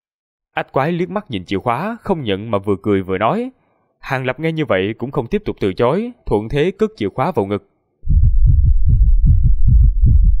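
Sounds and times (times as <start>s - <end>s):
speech: 0.6s - 7.7s
rapid deep heartbeat: 8.0s - 10.3s.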